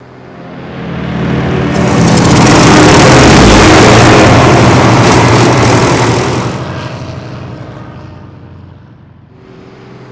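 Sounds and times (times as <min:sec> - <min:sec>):
Stuka vehicle damage: 0:00.5 - 0:08.1.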